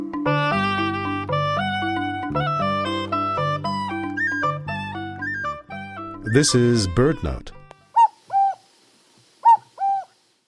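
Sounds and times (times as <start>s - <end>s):
common cuckoo two-note song: 0.5s - 6.7s, 7.9s - 8.7s, 9.4s - 10.2s
speech: 6.3s - 7.6s.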